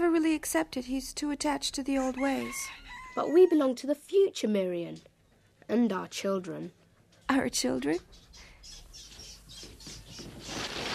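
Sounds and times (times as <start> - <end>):
speech: 0.1 - 5.1, 5.7 - 8.8
agitated chickens in a hen house flapping and squawking: 9.4 - 10.9.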